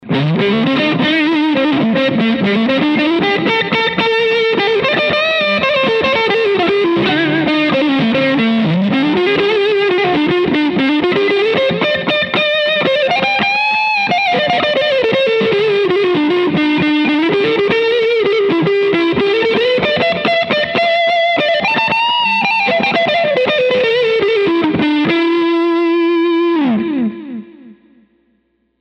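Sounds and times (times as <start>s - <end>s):
distorted lead guitar: 0.0s - 28.7s.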